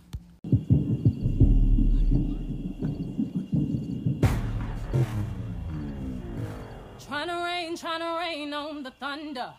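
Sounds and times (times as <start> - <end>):
deep throbbing bass thumps: 0.5 - 7.3
speech: 7.2 - 9.5.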